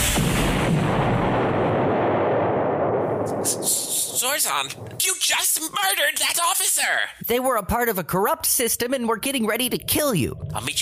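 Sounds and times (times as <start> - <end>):
missile launch and explosion in a sci-fi space battle: 0.0 - 4.8
speech: 3.5 - 10.8.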